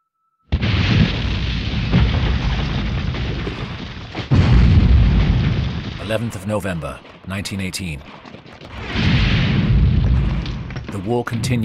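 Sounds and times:
artillery shell explosions over trenches: 0.5s - 11.6s
rumbling roar of debris as dirt rains down on trenches: 0.6s - 11.6s
speech: 6.1s - 9.1s, 10.9s - 11.6s.

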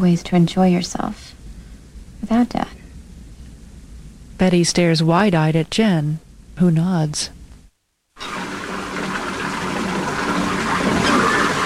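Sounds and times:
speech: 0.0s - 1.4s, 2.2s - 2.8s, 4.4s - 7.4s
water gushing from a tap into a bathtub: 8.2s - 11.6s.

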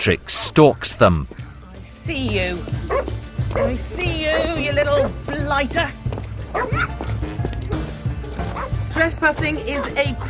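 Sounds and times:
speech: 0.0s - 1.5s, 2.1s - 7.1s, 8.6s - 10.2s
dog barking and yipping: 2.8s - 5.2s, 6.5s - 8.9s.

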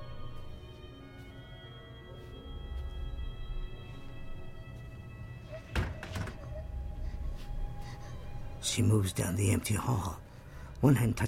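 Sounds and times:
low droning musical bed: 0.0s - 11.2s
door opening with a thunk: 5.6s - 6.6s
speech: 8.7s - 10.2s, 10.8s - 11.2s.

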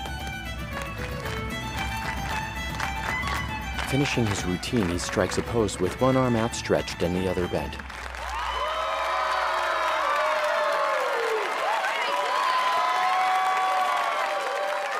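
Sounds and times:
crowd clapping and cheering: 0.0s - 14.9s
speech: 3.9s - 7.9s
people whooping: 8.1s - 14.9s.

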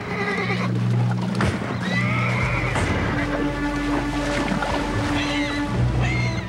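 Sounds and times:
mare whinnying to her foal along a river shore: 0.0s - 0.8s, 1.7s - 2.9s
river water rushing: 0.0s - 6.4s.

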